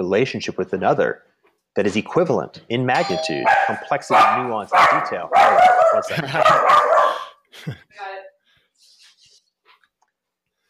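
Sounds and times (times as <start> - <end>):
speech: 0.0 - 8.1
mini labradoodle barking: 3.4 - 7.2
laughter: 5.9 - 8.0.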